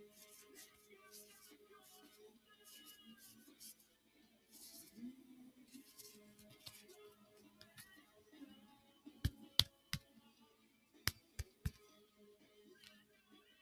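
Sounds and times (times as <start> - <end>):
quiet background music: 0.0 - 13.6
cards being handled, rustling and snapping: 11.1 - 11.8.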